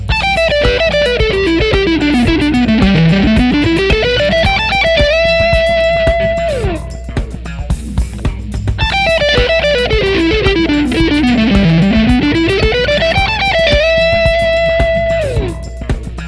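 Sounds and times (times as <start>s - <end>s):
guitar lick in E minor seventh: 0.1s - 7.3s, 8.8s - 16.1s.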